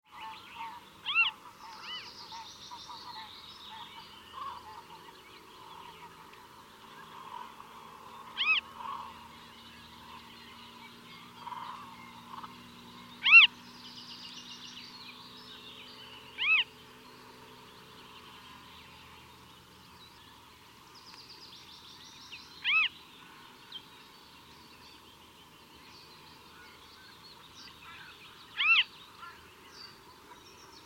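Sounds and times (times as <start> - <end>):
western marsh harrier calling: 0.1 - 16.8, 21.9 - 24.0, 26.1 - 30.8.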